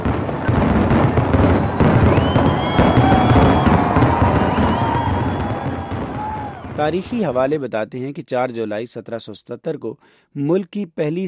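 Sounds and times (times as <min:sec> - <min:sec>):
fireworks exploding at a nighttime Fourth of July celebration: 0:00.0 - 0:07.6
speech: 0:06.8 - 0:11.2.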